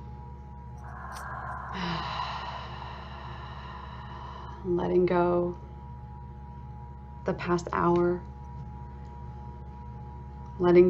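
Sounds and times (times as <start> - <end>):
steady low hum: 0.0 - 10.8
person taking a slow deep breath: 0.8 - 4.7
speech: 4.6 - 5.6, 7.3 - 8.3, 10.6 - 10.8.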